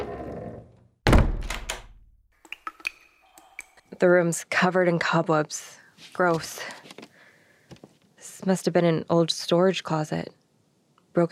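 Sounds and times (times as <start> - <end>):
heavy door thudding shut: 1.1 - 1.9
speech: 4.0 - 7.0, 8.4 - 10.4.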